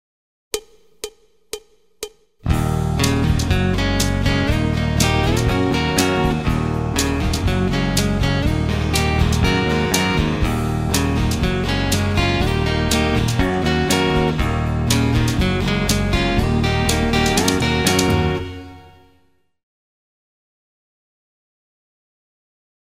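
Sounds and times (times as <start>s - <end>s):
full band playing: 2.5s - 19.0s
guitar solo: 2.5s - 19.2s.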